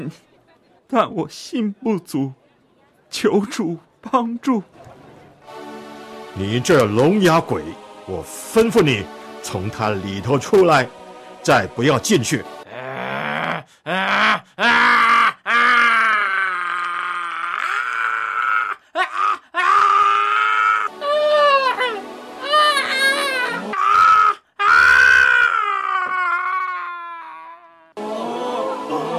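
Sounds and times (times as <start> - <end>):
speech: 0.0 - 0.3, 0.9 - 2.4, 3.1 - 4.9, 6.4 - 12.6, 13.8 - 15.0
person groaning and screaming: 12.7 - 28.0.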